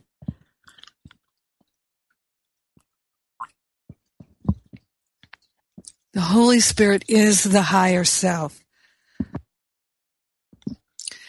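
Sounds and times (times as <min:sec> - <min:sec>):
person sipping tea: 0:00.6 - 0:01.1
speech: 0:06.2 - 0:08.6.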